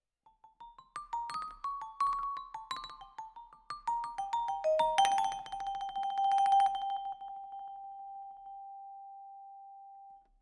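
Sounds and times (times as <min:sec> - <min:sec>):
close vibraphone: 0:00.6 - 0:08.1.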